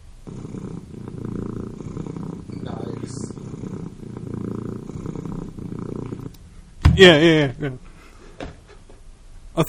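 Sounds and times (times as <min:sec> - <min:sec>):
pet cat purring as her feet are massaged: 0:00.0 - 0:06.6.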